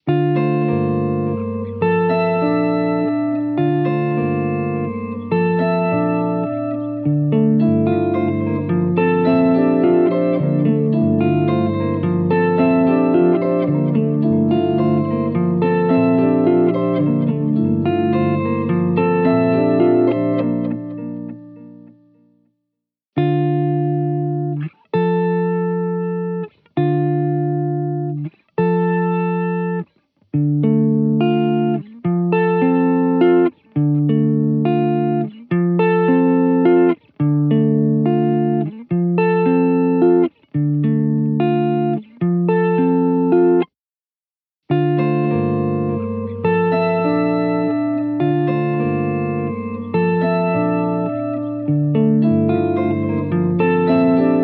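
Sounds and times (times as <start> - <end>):
polyphonic polyrhythmic guitar playing: 0.0 - 22.3, 23.2 - 43.8, 44.7 - 54.4.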